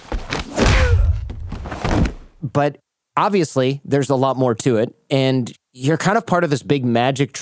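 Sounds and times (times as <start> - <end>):
heavy punch impacts: 0.0 - 2.4
speech: 2.6 - 7.4.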